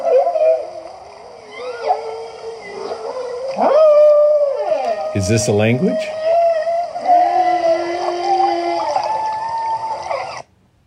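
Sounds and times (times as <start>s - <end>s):
humpback whale song: 0.0s - 10.5s
speech: 5.2s - 6.2s.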